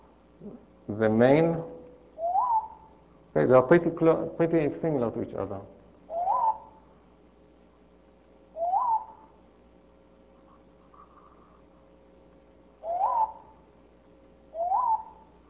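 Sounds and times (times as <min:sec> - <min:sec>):
faint steady hum: 0:00.0 - 0:15.4
speech: 0:00.4 - 0:01.7, 0:03.4 - 0:05.8
short tonal bird chirps: 0:02.2 - 0:03.0, 0:06.1 - 0:06.8, 0:08.6 - 0:09.4, 0:12.8 - 0:13.6, 0:14.5 - 0:15.4.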